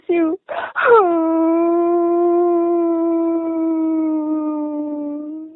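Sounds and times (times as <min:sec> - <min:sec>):
woman crying: 0:00.1 - 0:05.5.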